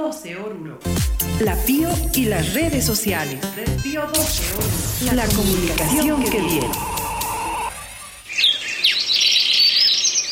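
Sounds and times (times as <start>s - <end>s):
speech: 0.0s - 7.0s
steady tone: 3.7s - 8.4s
swallows chirping: 7.1s - 10.2s.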